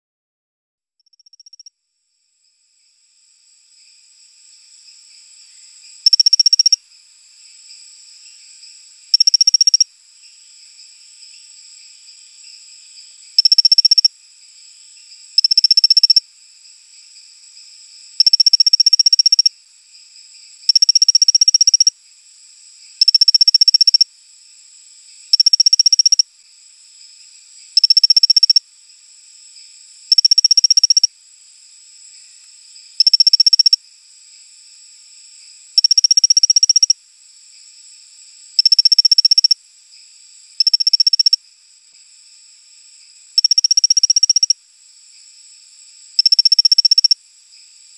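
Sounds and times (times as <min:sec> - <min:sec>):
Colostethus baebatrachus calling: 0:06.0 - 0:06.8, 0:09.1 - 0:09.9, 0:13.4 - 0:14.1, 0:15.4 - 0:16.2, 0:18.2 - 0:19.5, 0:20.7 - 0:21.9, 0:23.0 - 0:24.1, 0:25.3 - 0:26.3, 0:27.8 - 0:28.6, 0:30.1 - 0:31.1, 0:33.0 - 0:33.8, 0:35.8 - 0:37.0, 0:38.6 - 0:39.6, 0:40.6 - 0:41.4, 0:43.4 - 0:44.6, 0:46.2 - 0:47.2.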